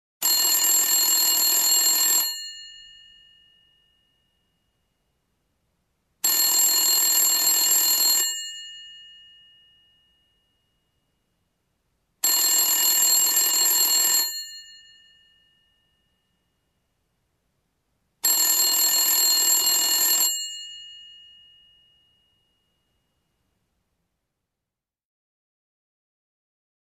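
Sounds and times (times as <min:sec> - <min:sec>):
old telephone ringing: 0:00.2 - 0:04.6, 0:06.2 - 0:10.9, 0:12.2 - 0:16.4, 0:18.2 - 0:22.5.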